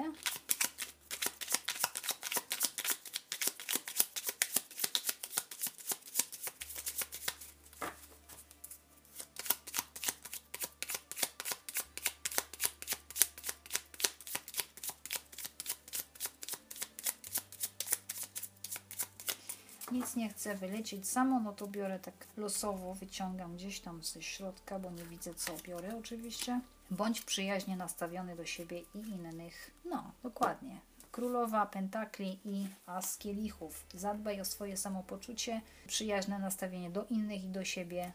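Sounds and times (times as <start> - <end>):
deck of oracle cards being shuffled: 0.1 - 20.7, 24.9 - 26.6
speech: 20.0 - 38.1.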